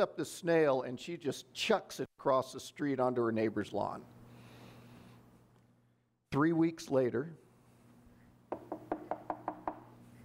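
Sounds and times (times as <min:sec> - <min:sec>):
speech: 0:00.0 - 0:04.2, 0:06.3 - 0:07.4
faint low hum: 0:02.2 - 0:10.2
firm knocking on a door: 0:08.5 - 0:09.9.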